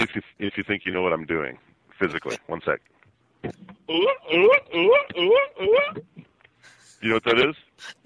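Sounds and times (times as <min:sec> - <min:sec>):
speech: 0:00.0 - 0:06.3, 0:07.0 - 0:08.0
voice imitating a circus performing seal with rhythmic barking honks: 0:03.9 - 0:06.0.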